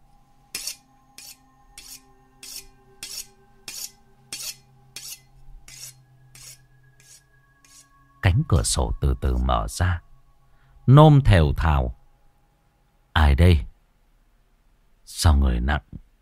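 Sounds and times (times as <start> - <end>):
faint low hum: 0.0 - 16.2
knife being sharpened outside a well: 0.5 - 7.9
speech: 8.4 - 10.1, 10.9 - 12.0, 13.2 - 13.7, 15.2 - 16.0.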